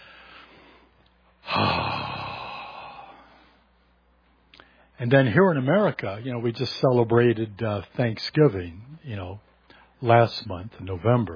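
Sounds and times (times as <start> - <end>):
person taking a deep breath: 0.0 - 3.4
speech: 5.0 - 11.3.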